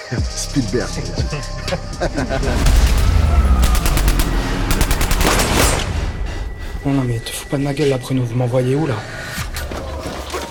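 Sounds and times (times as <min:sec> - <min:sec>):
speech: 0:00.1 - 0:03.6, 0:06.8 - 0:09.2
steady low rumbling background: 0:00.6 - 0:10.2
laughter: 0:01.5 - 0:03.1
rapid volleys of gunshots: 0:02.6 - 0:06.4.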